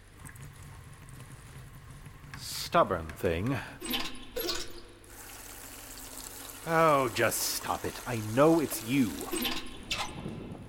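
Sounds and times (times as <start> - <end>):
speech: 2.4 - 3.9, 6.6 - 10.4
leaky kitchen faucet running water in an old manor house: 5.1 - 9.6.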